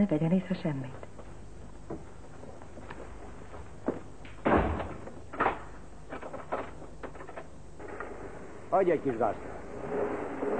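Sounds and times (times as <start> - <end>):
speech: 0.0 - 1.1, 8.7 - 10.5
door shutting with a solid thud: 4.4 - 5.7.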